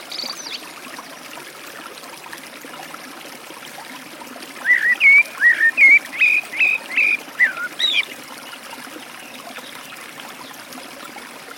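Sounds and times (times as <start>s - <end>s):
Eurasian blackbird whistling by a forest stream: 4.6s - 8.1s.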